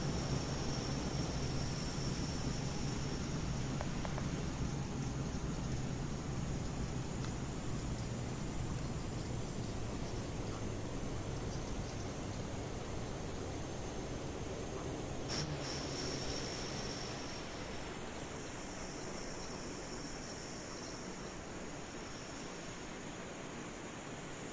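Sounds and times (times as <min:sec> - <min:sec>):
airliner reverse thrust and braking just after landing: 0:00.0 - 0:06.5, 0:13.8 - 0:24.5
faint high whine: 0:00.0 - 0:24.5.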